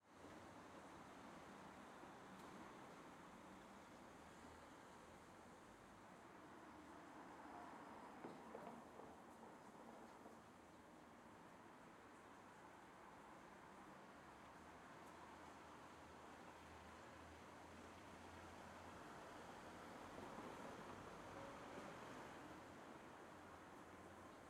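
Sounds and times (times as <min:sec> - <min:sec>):
light traffic in a suburb on a quiet afternoon: 0:00.1 - 0:24.4.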